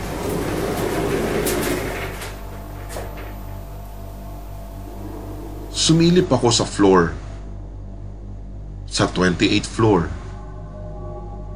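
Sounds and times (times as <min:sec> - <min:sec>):
elevator door sliding open with mechanical rumble and whir: 0:00.0 - 0:06.2
low hum: 0:00.0 - 0:11.5
speech: 0:05.9 - 0:07.2, 0:09.0 - 0:10.2.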